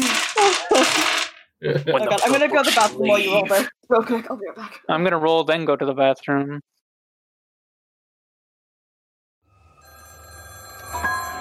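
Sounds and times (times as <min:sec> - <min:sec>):
laughter: 0:00.4 - 0:03.8
speech: 0:01.6 - 0:06.8
wall telephone ringing with jangling bell: 0:09.6 - 0:11.3.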